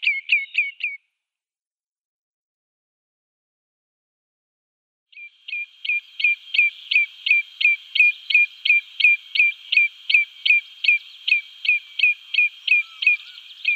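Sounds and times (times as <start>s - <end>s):
common redshank display call: 0.0s - 1.0s, 5.2s - 13.7s.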